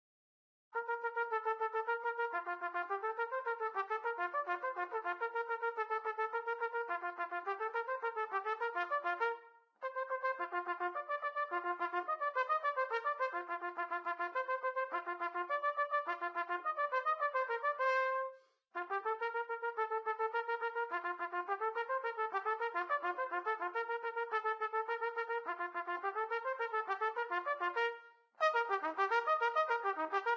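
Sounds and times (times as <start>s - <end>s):
trumpet training: 0.8s - 30.3s.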